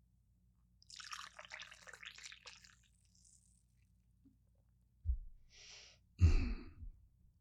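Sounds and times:
coffee pouring into a cup: 0.9 - 3.5.

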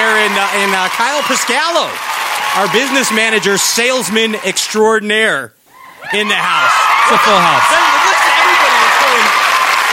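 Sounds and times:
crowd applause: 0.0 - 4.7, 6.4 - 9.9
speech: 0.5 - 7.9.

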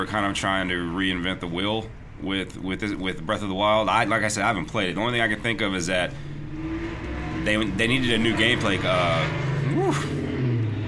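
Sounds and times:
speech: 0.0 - 6.3, 7.4 - 10.2
traffic passing outside: 0.0 - 10.8
vehicle engine passing by: 4.6 - 10.8.

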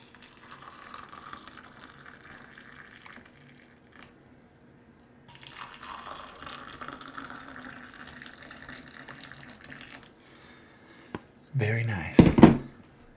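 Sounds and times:
hot water pouring into a cup over tea: 0.0 - 4.4, 5.3 - 10.2
speech: 11.6 - 12.4.

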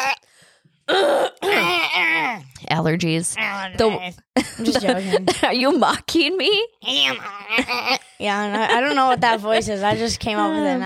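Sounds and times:
speech: 0.9 - 1.4, 2.8 - 10.8
person clearing throat: 0.9 - 2.4.

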